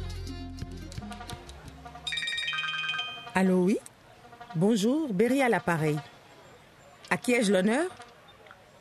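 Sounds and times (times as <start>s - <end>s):
phone ringing with a loud melodic ringtone: 2.0s - 3.6s
speech: 3.4s - 3.9s, 4.5s - 6.1s, 7.1s - 8.0s.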